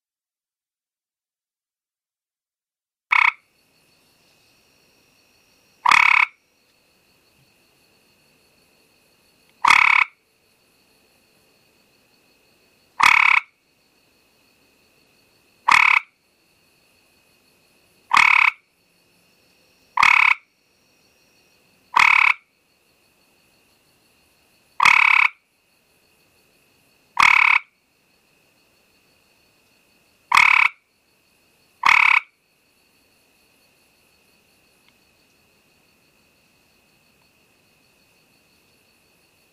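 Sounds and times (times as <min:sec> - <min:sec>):
Hyla versicolor frog calling with a slow trill: 0:03.1 - 0:07.4, 0:09.4 - 0:10.4, 0:12.2 - 0:17.0, 0:18.0 - 0:22.8, 0:24.6 - 0:25.7, 0:27.1 - 0:32.7.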